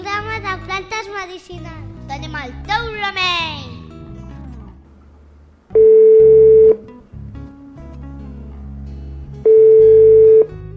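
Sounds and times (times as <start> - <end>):
speech: 1.3 - 3.7
buzzy telephone line beeps as a caller's call comes through: 5.7 - 6.8, 9.4 - 10.5.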